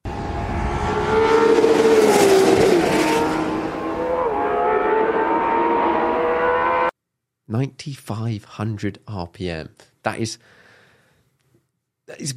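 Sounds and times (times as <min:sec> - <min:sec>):
naturally aspirated V12 supercar engine revving: 0:00.0 - 0:06.9
person speaking: 0:07.5 - 0:10.4, 0:12.1 - 0:12.3.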